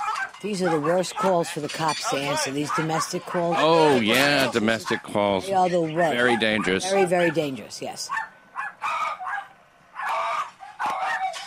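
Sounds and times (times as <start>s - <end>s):
several dogs barking: 0.0s - 11.4s
speech: 0.4s - 8.3s
laughter: 0.5s - 7.4s.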